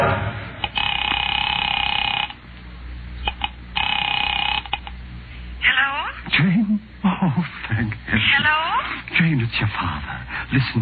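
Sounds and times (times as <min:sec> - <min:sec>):
telephone ringing on the other end of a call: 0:00.6 - 0:02.4, 0:03.2 - 0:05.0
speech: 0:06.4 - 0:10.8.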